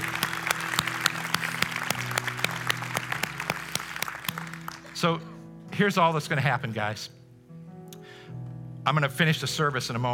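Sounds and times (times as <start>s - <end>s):
congregation applauding: 0.0s - 5.2s
speech: 5.0s - 7.2s, 8.3s - 10.1s.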